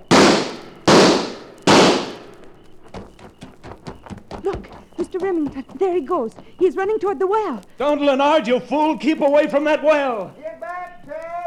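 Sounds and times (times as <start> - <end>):
sound-effect gunshots in a drama scene: 0.0 - 2.4
faint pops: 0.0 - 11.4
speech: 5.2 - 10.4.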